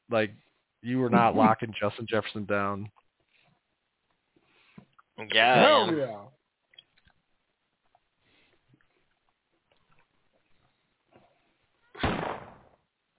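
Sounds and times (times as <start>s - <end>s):
speech: 0.1s - 3.0s, 5.2s - 6.4s
laughter: 1.2s - 1.6s
gunshot: 12.0s - 12.8s.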